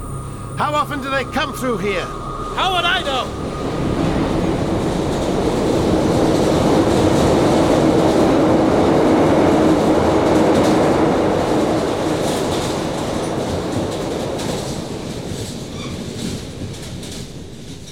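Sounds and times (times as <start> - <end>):
train rumbling past with rattling cars: 0.0 - 17.8
speech: 0.6 - 3.7.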